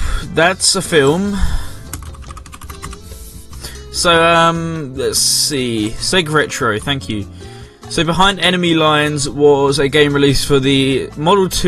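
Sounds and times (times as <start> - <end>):
speech: 0.3 - 1.7, 4.0 - 11.6
typing on a computer keyboard: 1.9 - 3.0.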